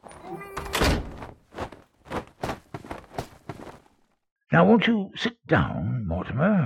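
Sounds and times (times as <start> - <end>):
door shutting: 0.0 - 1.4
speech: 4.5 - 6.6.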